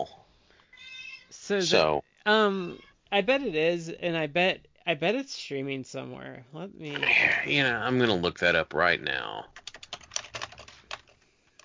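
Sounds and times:
speech: 0.0s - 0.2s, 1.5s - 9.6s
computer keyboard typing: 9.5s - 11.6s.

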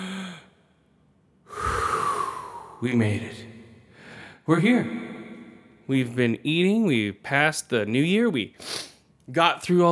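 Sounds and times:
deep breath taken close to the microphone: 1.4s - 2.9s, 3.7s - 4.5s
speech: 2.8s - 3.6s, 4.5s - 5.0s, 5.9s - 9.9s.

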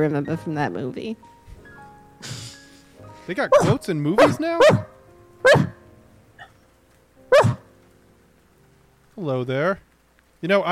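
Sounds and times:
speech: 0.0s - 1.4s, 2.2s - 2.4s, 3.3s - 5.7s, 9.2s - 10.7s
dog barking: 3.5s - 5.8s, 7.3s - 7.6s.

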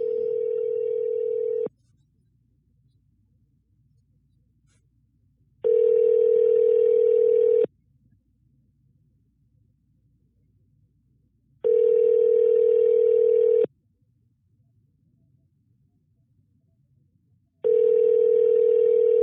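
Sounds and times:
telephone ringback tone of an unanswered call: 0.0s - 1.7s, 5.6s - 7.7s, 11.6s - 13.7s, 17.6s - 19.2s.

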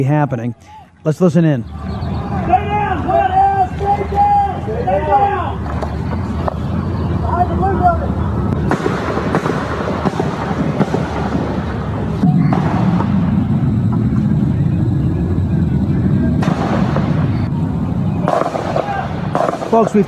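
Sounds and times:
speech: 0.0s - 2.0s, 7.4s - 9.2s, 19.7s - 20.0s
steady rumbling noise: 0.0s - 20.0s
small arms gunfire cracks: 8.6s - 13.6s, 16.4s - 17.5s, 18.2s - 20.0s.

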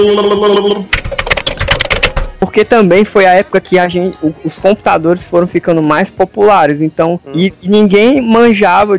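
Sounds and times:
speech: 0.0s - 1.2s, 2.4s - 8.9s
fast typing on a keyboard: 0.0s - 2.5s.

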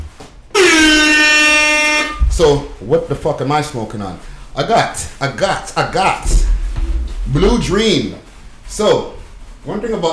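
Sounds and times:
air horn blast: 0.5s - 2.8s
speech: 2.4s - 6.5s, 7.3s - 10.1s.

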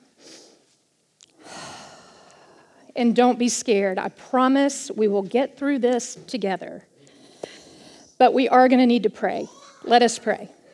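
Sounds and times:
deep breath during a church sermon: 1.4s - 2.9s, 7.0s - 8.2s
speech: 3.0s - 6.9s, 8.2s - 10.6s.

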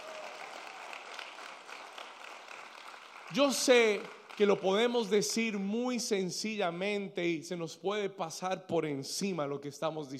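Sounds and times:
audience applauding: 0.0s - 5.1s
speech: 3.3s - 10.1s.

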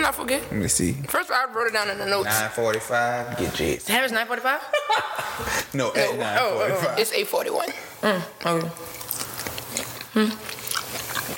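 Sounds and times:
speech: 0.0s - 9.0s, 10.2s - 10.5s
wet chewing at the microphone: 8.4s - 11.3s.

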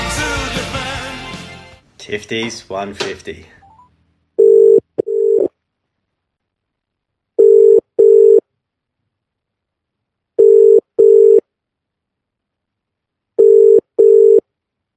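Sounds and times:
speech: 2.3s - 3.6s
telephone ringing in double-burst electronic tones: 4.4s - 5.5s, 7.4s - 8.4s, 10.4s - 11.4s, 13.4s - 14.4s.

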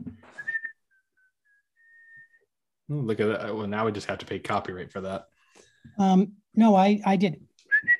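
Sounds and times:
person whistling a tune: 0.3s - 2.4s, 7.7s - 7.9s
speech: 2.9s - 7.5s.

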